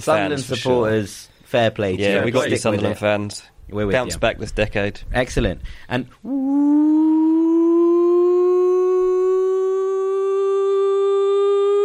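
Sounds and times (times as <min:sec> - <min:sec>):
speech: 0:00.0 - 0:07.0
siren sound effect wailing: 0:06.5 - 0:11.8.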